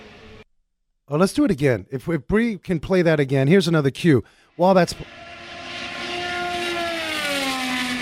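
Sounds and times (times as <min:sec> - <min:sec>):
speech: 0:01.1 - 0:05.4
race car engine whining as it speeds past: 0:05.0 - 0:08.0.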